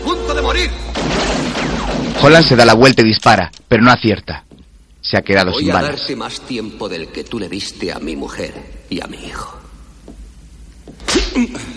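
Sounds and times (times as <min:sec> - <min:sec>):
speech: 0:00.1 - 0:00.9, 0:02.2 - 0:09.6, 0:11.1 - 0:11.7
slap to the face during a fight in an action film: 0:11.0 - 0:11.4.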